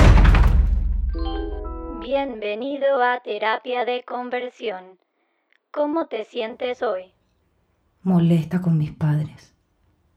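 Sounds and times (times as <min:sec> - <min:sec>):
bedroom door slammed shut: 0:00.0 - 0:01.3
speech: 0:02.1 - 0:05.1, 0:05.7 - 0:07.2, 0:08.0 - 0:09.5.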